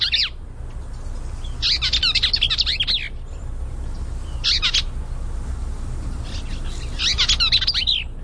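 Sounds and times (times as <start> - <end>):
Bell's Vireo singing scratchy warbling phrases: 0.0 - 8.2
steady low rumble: 0.0 - 8.2.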